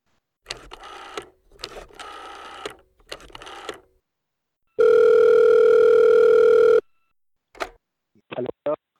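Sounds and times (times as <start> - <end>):
telephone ringback tone while placing a call: 4.8 - 6.9.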